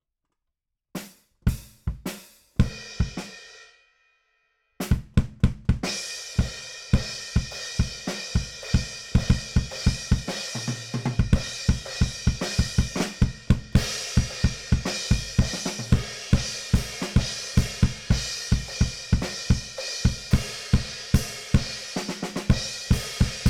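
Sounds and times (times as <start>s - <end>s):
bass drum: 4.9s - 6.0s, 7.0s - 23.4s.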